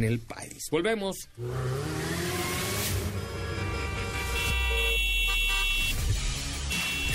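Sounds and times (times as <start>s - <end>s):
speech: 0.0s - 2.4s
car horns honking: 2.9s - 7.1s.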